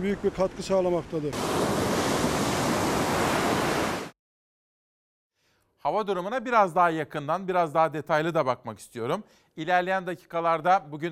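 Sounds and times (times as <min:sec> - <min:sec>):
speech: 0:00.0 - 0:01.8, 0:05.8 - 0:11.1
sea waves breaking on a beach after a downpour: 0:00.6 - 0:04.2.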